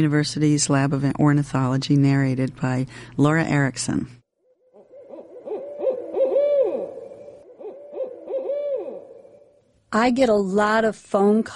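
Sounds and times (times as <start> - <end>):
speech: 0.0 - 4.2, 9.9 - 11.5
barred owl caterwauling: 4.4 - 9.7.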